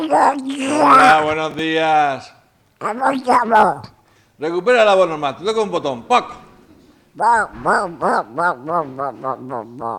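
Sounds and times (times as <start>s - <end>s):
cartoon duck voice imitation: 0.0s - 1.3s, 2.8s - 3.9s, 7.2s - 9.9s
speech: 0.1s - 6.4s, 7.2s - 9.9s.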